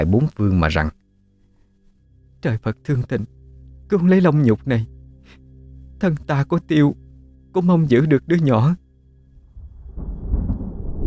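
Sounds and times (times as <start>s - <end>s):
speech: 0.0s - 1.0s, 2.4s - 5.4s, 6.0s - 7.0s, 7.6s - 8.8s
thunder rumbling: 9.4s - 11.0s.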